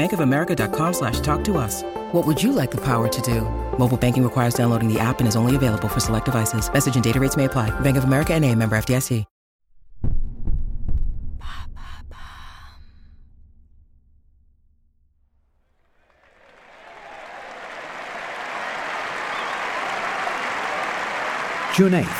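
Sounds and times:
speech: 0:00.0 - 0:09.3, 0:21.8 - 0:22.1
deep booming thumps: 0:09.8 - 0:15.2
large stadium crowd roaring and cheering: 0:16.0 - 0:22.1.

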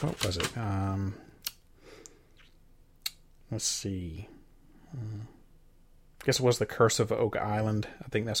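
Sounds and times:
paper being shuffled through written notes: 0:00.0 - 0:00.8
speech: 0:00.0 - 0:01.3, 0:03.5 - 0:05.4, 0:06.2 - 0:08.3.

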